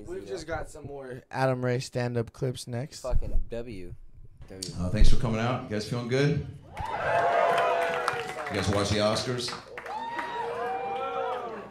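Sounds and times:
speech: 0.0s - 7.4s, 8.5s - 9.7s
crowd of several voices booing: 6.7s - 8.8s, 9.8s - 11.7s.

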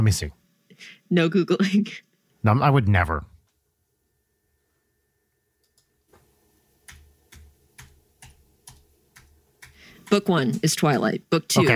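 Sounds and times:
speech: 0.0s - 3.3s, 10.1s - 11.7s
typing on a computer keyboard: 6.8s - 10.9s.

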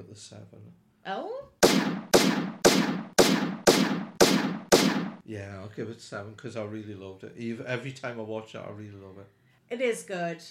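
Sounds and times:
speech: 0.0s - 3.5s, 5.3s - 10.5s
loud gunshot sound effects with decay: 1.6s - 5.2s.

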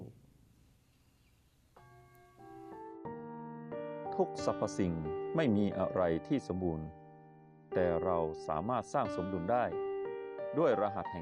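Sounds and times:
meditation bell ringing during a guided breathing meditation: 1.8s - 2.8s
speech: 4.2s - 7.0s, 7.7s - 9.8s, 10.5s - 11.1s.

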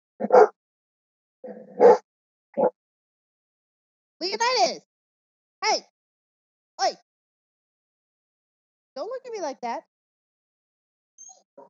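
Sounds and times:
dog barking: 0.2s - 0.6s, 1.7s - 2.0s
speech: 1.4s - 2.0s, 4.6s - 4.9s, 5.6s - 5.9s, 6.8s - 7.0s, 9.0s - 9.9s.

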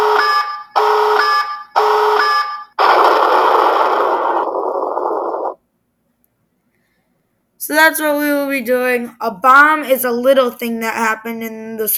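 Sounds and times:
electronic alarm beeps warning of an incoming tactical nuke: 0.0s - 2.8s
harsh alarm blast warning of an incoming tactical nuke: 0.0s - 5.6s
speech: 7.7s - 11.9s.

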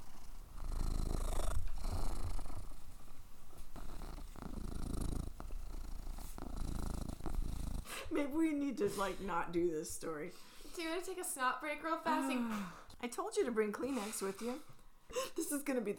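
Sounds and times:
cat purring: 0.0s - 8.1s
speech: 8.1s - 14.7s, 15.5s - 15.9s.

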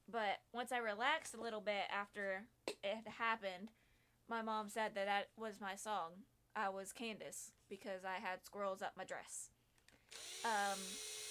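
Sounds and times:
speech: 0.1s - 11.2s
power drill whirring: 10.0s - 11.3s.

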